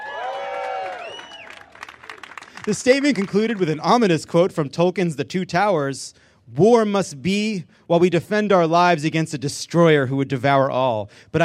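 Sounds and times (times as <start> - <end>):
crowd cheering loudly with whoops: 0.0 - 2.5
scattered claps: 0.5 - 3.8
speech: 2.6 - 11.4.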